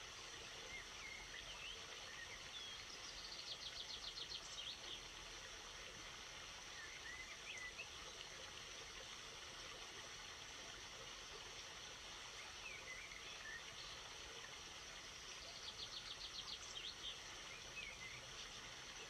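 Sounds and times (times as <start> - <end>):
flowing stream: 0.0 - 19.0.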